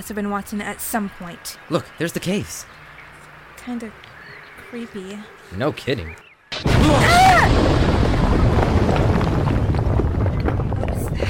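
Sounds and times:
speech: 0.0s - 2.8s, 3.6s - 4.1s, 4.7s - 7.7s
loud explosion with heavy low boom and rumbling roar: 6.6s - 11.2s.

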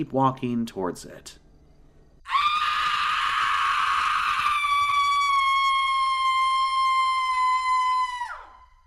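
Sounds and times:
speech: 0.0s - 1.4s
mountain lion scream: 2.3s - 8.7s.

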